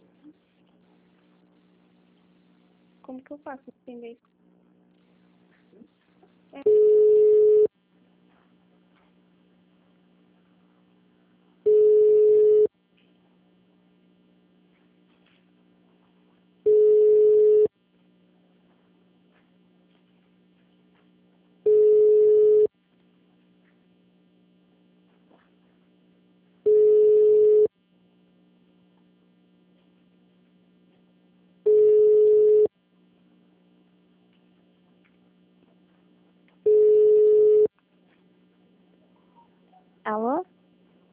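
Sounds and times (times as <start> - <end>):
low continuous hum: 0.0 - 41.1
speech: 3.1 - 4.4
telephone ringing for an incoming call: 6.6 - 7.7, 11.7 - 12.7, 16.7 - 17.7, 21.7 - 22.7, 26.7 - 27.7, 31.7 - 32.7, 36.7 - 37.7.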